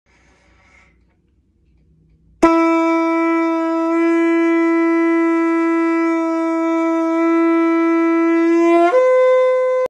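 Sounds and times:
shofar: 2.4s - 9.8s.

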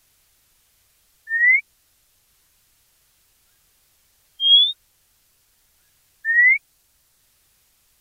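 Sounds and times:
White monjita giving short clean whistles: 1.3s - 1.6s, 4.4s - 4.8s, 6.2s - 6.6s.

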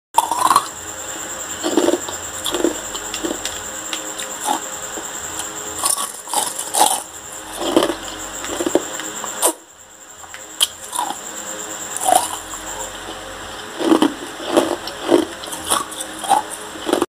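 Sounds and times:
chewing ice: 0.2s - 0.7s, 1.6s - 4.6s, 5.8s - 8.8s, 10.6s - 11.2s, 12.0s - 12.6s, 13.5s - 17.1s.

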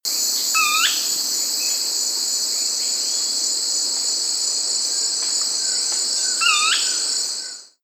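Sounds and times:
Brownish twistwing: 0.6s - 1.1s, 5.6s - 7.7s.

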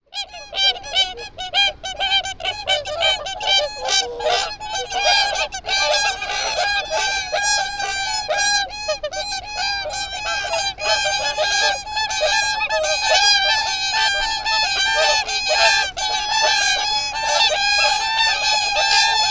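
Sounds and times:
whooper swan calling: 0.2s - 19.2s.

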